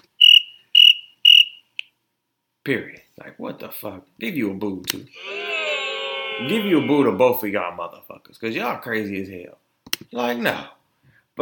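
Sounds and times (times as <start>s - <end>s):
cricket chirping: 0.2s - 1.7s
speech: 2.6s - 5.4s, 6.4s - 10.8s.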